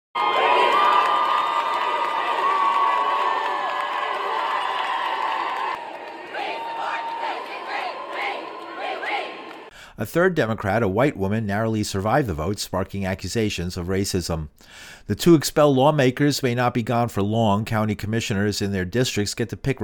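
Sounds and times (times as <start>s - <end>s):
legislative gallery crowd screaming and booing: 0.2s - 9.7s
speech: 10.0s - 19.8s.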